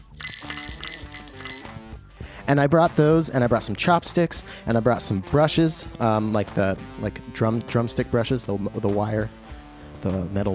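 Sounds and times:
jingle bell wristbands being shaken: 0.0s - 1.9s
speech: 2.5s - 9.4s, 10.0s - 10.5s.

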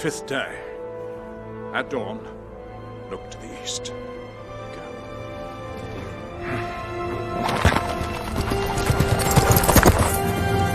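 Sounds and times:
speech: 0.0s - 0.7s, 1.7s - 2.4s, 3.1s - 4.2s
horse hooves clip-clopping: 7.3s - 10.6s.

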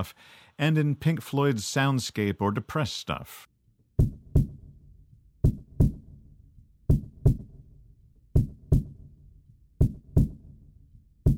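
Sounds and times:
speech: 0.0s - 4.2s
kick drum thumping in a heartbeat pattern: 4.0s - 7.7s, 8.3s - 9.2s, 9.8s - 11.3s.

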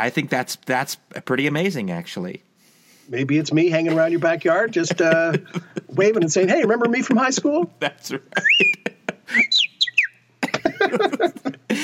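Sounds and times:
speech: 0.0s - 2.5s, 3.1s - 9.4s
laughter: 3.8s - 9.6s, 10.4s - 11.8s
person whistling imitating bird calls: 8.4s - 10.2s.

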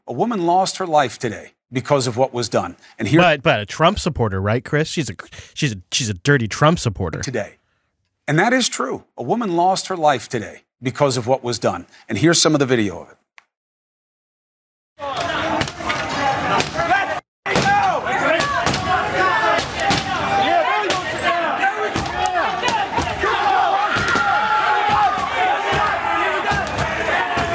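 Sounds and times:
speech: 0.1s - 7.6s, 8.3s - 13.2s
loud agitated crowd of protesters yelling: 15.0s - 27.5s.

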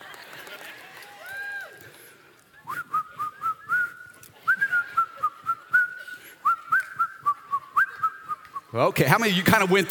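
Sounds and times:
person whistling a bright bouncy tune: 2.6s - 8.7s
speech: 8.8s - 9.8s.

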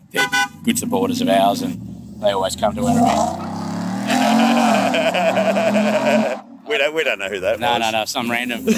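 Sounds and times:
several cars pulling away: 0.0s - 8.0s
speech: 0.1s - 3.5s, 5.0s - 8.7s
car engines revving loudly: 0.4s - 6.8s
laughter: 4.1s - 7.6s, 8.5s - 8.7s.

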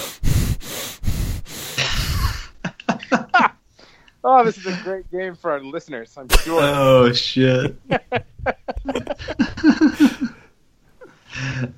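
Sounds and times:
person breathing through the nose with puffed-out cheeks: 0.0s - 2.6s, 3.7s - 4.2s
laughter: 2.4s - 3.6s, 6.3s - 10.5s
speech: 4.3s - 10.1s.

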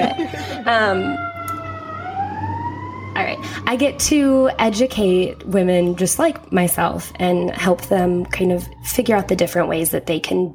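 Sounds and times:
laughter: 0.0s - 1.2s
speech: 0.0s - 1.3s, 3.2s - 10.5s
fire truck siren wailing with rising pitch sweep: 0.0s - 10.5s
low fire truck engine rumble: 0.0s - 10.5s.

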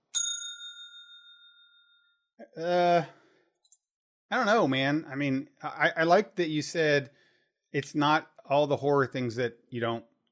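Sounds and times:
bright spoiler warning bell ding: 0.0s - 2.2s
speech: 2.4s - 3.2s, 4.3s - 10.1s.

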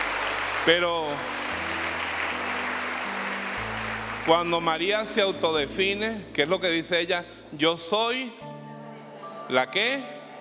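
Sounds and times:
congregation applause during a church sermon: 0.0s - 5.4s
speech: 0.7s - 1.4s, 4.2s - 8.6s, 9.5s - 10.2s.

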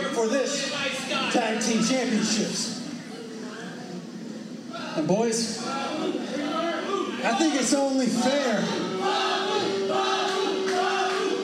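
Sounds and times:
speech: 0.2s - 0.7s, 1.3s - 2.8s, 5.0s - 10.2s
large crowd chanting rhythmically: 5.6s - 11.4s.

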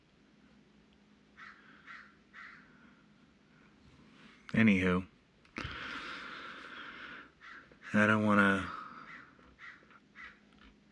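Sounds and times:
crow cawing outside: 1.4s - 2.8s, 7.4s - 8.0s, 8.7s - 10.8s
speech: 4.5s - 5.1s, 8.0s - 8.7s.

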